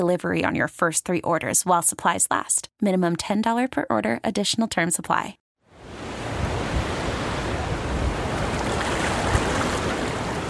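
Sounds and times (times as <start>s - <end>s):
speech: 0.0s - 5.4s
ocean surf breaking onto a sandy beach: 5.7s - 10.4s.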